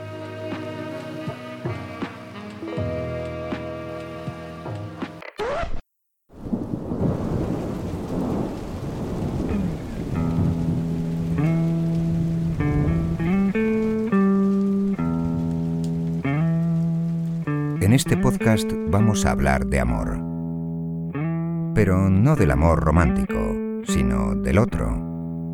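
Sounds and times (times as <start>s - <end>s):
gentle tonal music: 0.0s - 5.2s, 10.4s - 25.5s
steady hiss of rain: 6.3s - 18.9s
loud rumbling thunderclap: 6.4s - 13.3s
speech: 18.0s - 20.3s, 21.8s - 25.1s.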